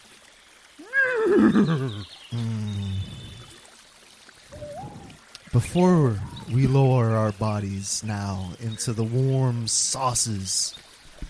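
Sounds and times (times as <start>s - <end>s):
horse whinnying: 0.8s - 2.0s
horse nickering: 0.8s - 3.5s
speech: 1.3s - 2.7s, 5.5s - 10.9s.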